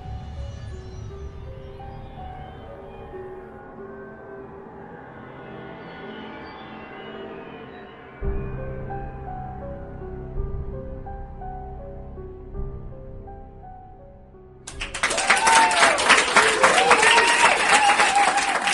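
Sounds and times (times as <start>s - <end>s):
low sustained musical passage: 0.0s - 15.2s
crowd applause in a tea house: 14.7s - 18.7s.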